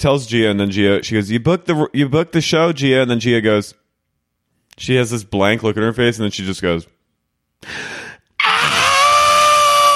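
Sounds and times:
speech: 0.0s - 3.8s, 4.8s - 7.0s, 7.6s - 8.0s
breathy gasp: 7.6s - 8.3s
loud sustained theatrical scream: 8.4s - 9.9s.

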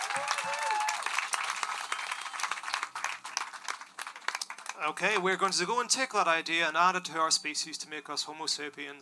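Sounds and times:
person whooping or cheering: 0.0s - 1.1s
audience applause: 0.0s - 5.0s
speech: 4.8s - 9.0s.

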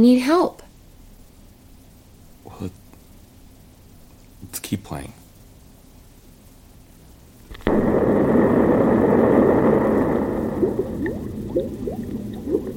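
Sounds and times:
speech: 0.0s - 0.6s, 2.6s - 2.8s, 4.5s - 5.2s
sharp burst: 7.5s - 11.9s
dense fizzing rush: 7.5s - 12.7s
rising bubbles popping and gurgling: 7.5s - 12.7s.

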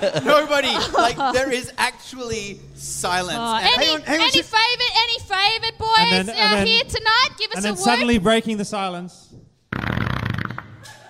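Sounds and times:
laughter: 0.0s - 1.8s
speech: 0.0s - 9.8s
fart: 9.7s - 11.0s.

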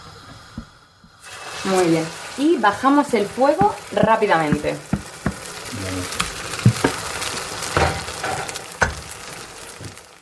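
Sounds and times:
egg mixture for a tortilla sizzling in hot oil in a frying pan: 0.0s - 10.1s
speech: 1.7s - 4.9s
sharp knocks: 3.4s - 5.5s.

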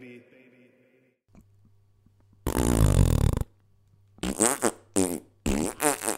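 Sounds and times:
loud raspy and squeaky tonal farts: 2.4s - 3.6s, 4.2s - 6.1s.

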